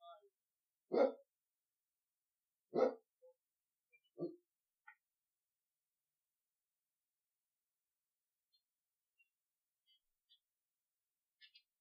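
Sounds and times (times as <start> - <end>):
dog barking: 0.9 - 1.3, 2.7 - 3.1, 4.2 - 4.4.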